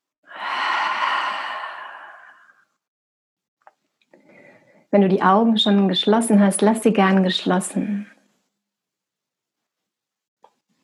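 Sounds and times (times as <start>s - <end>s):
deep breath in and out: 0.2s - 2.8s, 4.2s - 4.9s
speech: 4.9s - 8.2s.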